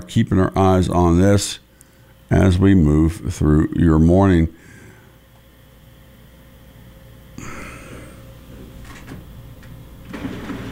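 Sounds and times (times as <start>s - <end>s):
speech: 0.1s - 1.6s, 2.3s - 4.7s
printer whirring and grinding: 10.0s - 10.6s.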